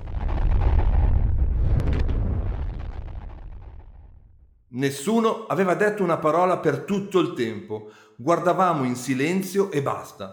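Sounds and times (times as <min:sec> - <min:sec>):
huge explosion boom with thunderlike rumble: 0:00.0 - 0:04.7
speech: 0:04.8 - 0:10.3.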